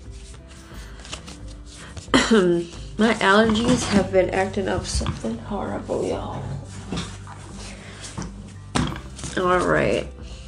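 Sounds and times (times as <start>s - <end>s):
deck of tarot cards being shuffled: 0.1s - 2.2s
speech: 2.3s - 6.6s, 9.4s - 10.2s.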